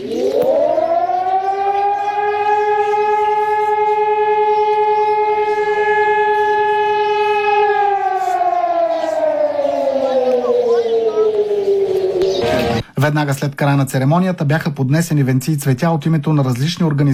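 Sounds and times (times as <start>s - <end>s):
civil defense sirens wailing across Bulgaria during a commemoration ceremony: 0.0s - 12.9s
speech: 13.1s - 17.1s.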